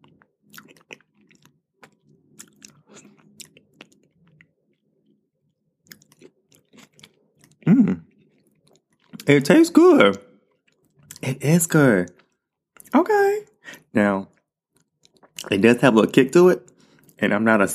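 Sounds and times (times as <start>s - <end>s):
person chewing while eating a dish with a spoon: 0.0s - 9.3s, 10.1s - 11.2s, 12.0s - 12.9s, 14.3s - 15.5s
speech: 9.3s - 10.3s, 11.3s - 12.2s, 14.0s - 14.3s, 15.5s - 17.7s.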